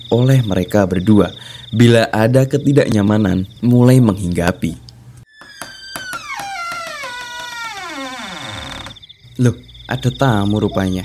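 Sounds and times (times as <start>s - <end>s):
speech: 0.1s - 4.8s, 9.4s - 11.0s
wooden door creaking open: 5.3s - 9.0s.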